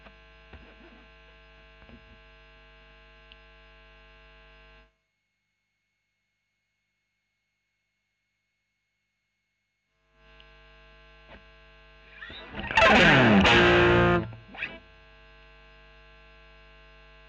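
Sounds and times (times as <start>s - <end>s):
overdriven electric guitar recorded with a Royer microphone: 10.4s - 14.9s.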